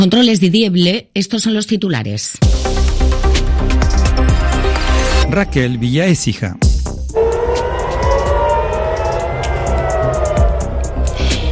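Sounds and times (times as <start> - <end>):
speech: 0.0 - 4.1, 5.3 - 6.7
air raid siren wailing across a city: 7.1 - 11.5
constant low rumble of urban noise: 7.1 - 11.5.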